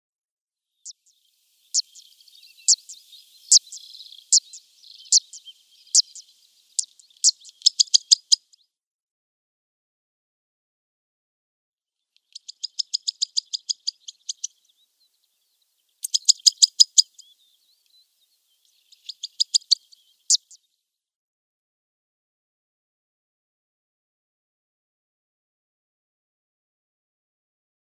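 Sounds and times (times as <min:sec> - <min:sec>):
Zitting Cisticola calling: 0:01.6 - 0:08.6, 0:12.2 - 0:14.8, 0:16.0 - 0:20.6.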